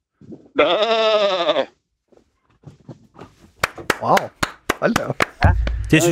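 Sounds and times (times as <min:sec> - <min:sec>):
speech: 0:00.6 - 0:01.5, 0:04.0 - 0:05.2
person's voice imitating a sheep bleating: 0:00.6 - 0:01.7.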